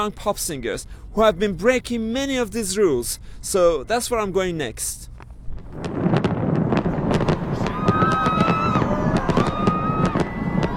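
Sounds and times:
speech: 0.0s - 5.1s, 5.7s - 6.0s
New Year fireworks bangs and pops in Dubai: 5.1s - 10.7s
crowd roar at a huge New Year celebration in Dubai: 7.0s - 10.7s
whistling tones of fireworks: 7.8s - 10.7s.

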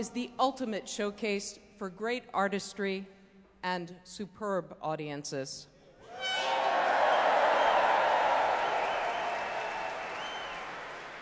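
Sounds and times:
speech: 0.0s - 5.7s
large concert audience applause: 6.2s - 11.2s.

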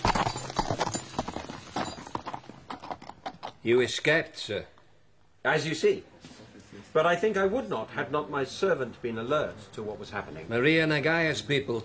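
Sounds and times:
horse hooves galloping as riders flee: 0.0s - 4.0s
speech: 3.6s - 4.7s, 5.4s - 6.1s, 6.9s - 11.8s.

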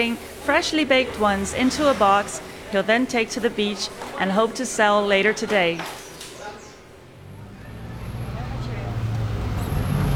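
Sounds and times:
speech: 0.0s - 6.0s
broadband road noise: 0.0s - 10.1s
city bus engine rumbling through road traffic: 0.0s - 10.1s.

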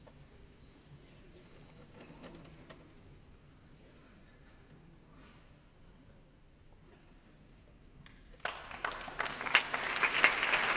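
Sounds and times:
concert audience applause at a symphony orchestra concert: 8.4s - 10.7s.

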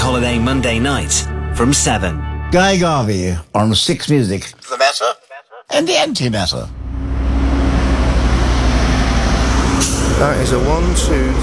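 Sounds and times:
speech: 0.2s - 6.8s, 10.2s - 11.4s
heavy 18-wheel truck driving past: 6.7s - 11.4s.

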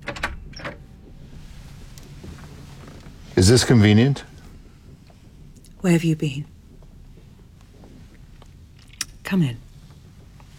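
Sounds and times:
lift doors sliding shut: 0.0s - 4.1s
low steady lift motor hum: 0.0s - 10.5s
speech: 3.4s - 4.3s, 5.8s - 6.5s, 9.3s - 9.6s.

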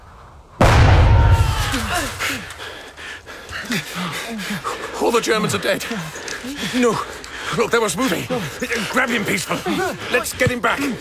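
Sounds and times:
grenade explosion thrown at German soldiers in wartime: 0.6s - 2.4s
speech: 2.0s - 2.7s, 3.7s - 11.0s
laughter: 3.6s - 11.0s.

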